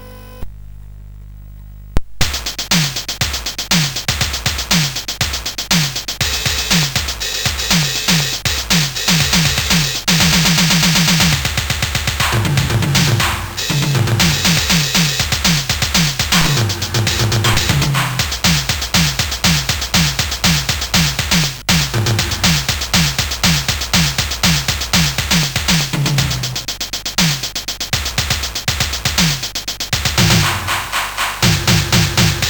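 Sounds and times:
digital drums on SID CSG8580R5 chip: 2.2 - 32.4.

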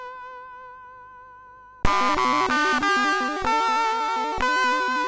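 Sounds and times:
MOS6581R3 SID chip music: 1.9 - 5.0.

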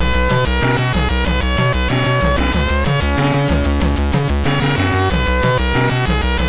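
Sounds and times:
MOS6581R3 sound chip synthesizer: 0.0 - 6.4.

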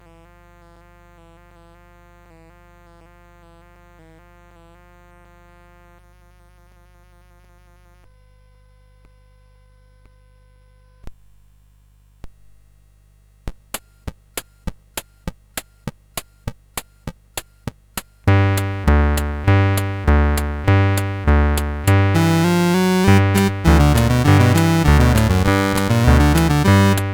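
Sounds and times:
chiptune music on CSG8580R5: 18.3 - 27.1.

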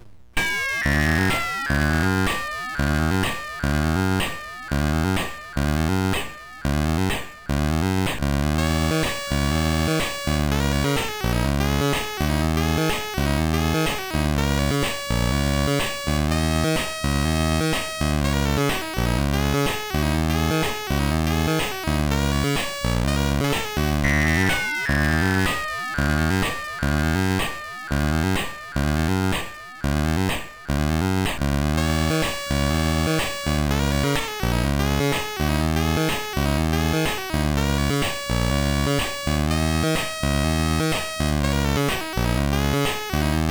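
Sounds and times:
saxophone sound from a sound chip: 0.4 - 15.6, 16.3 - 43.3.

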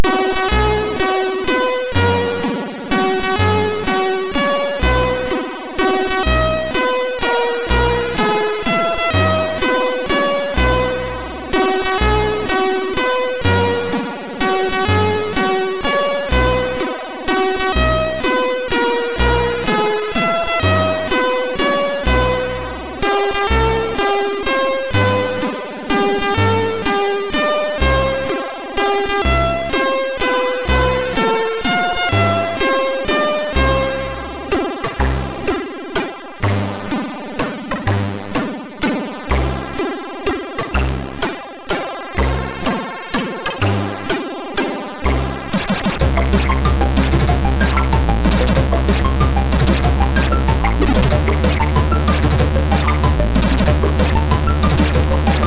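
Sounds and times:
chiptune melody on MOS6581R3 SID chip: 0.0 - 55.4.

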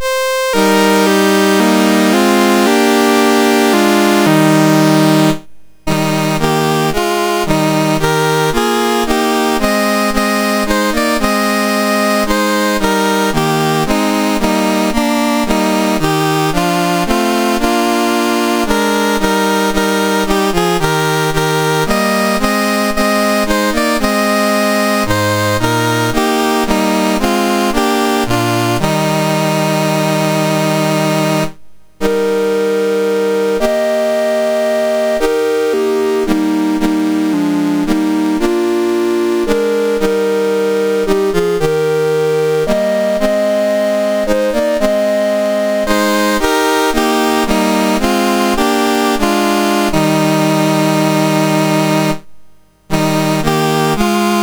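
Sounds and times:
national anthem played on MOS6581R4 sound chip: 0.0 - 54.4.

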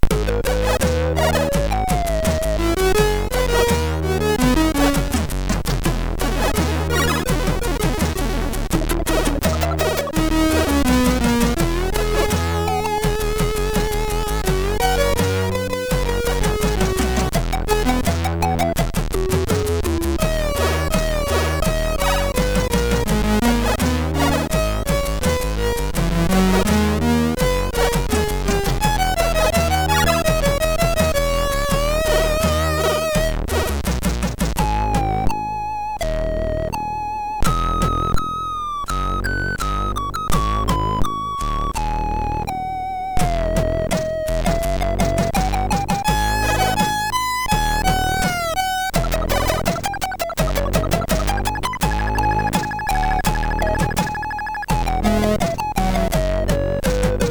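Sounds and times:
SID chiptune music on MOS6581 sound chip: 0.0 - 57.2.

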